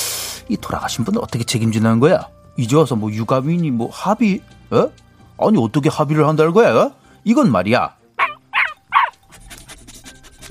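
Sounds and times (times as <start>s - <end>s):
speech: 0.5s - 8.0s
dog barking sharply: 8.2s - 9.2s.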